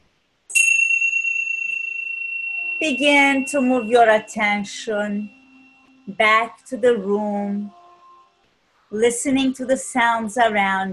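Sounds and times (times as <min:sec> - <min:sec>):
meditation bell ringing: 0:00.5 - 0:06.7
speech: 0:02.8 - 0:05.4, 0:06.1 - 0:07.8, 0:08.9 - 0:10.9.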